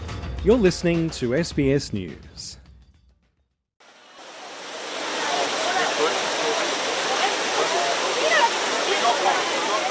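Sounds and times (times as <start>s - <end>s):
speech: 0.5s - 2.6s
tourists splashing in fountain water to cool off during a heatwave: 4.2s - 9.8s
faint murmur of voices: 4.9s - 9.8s.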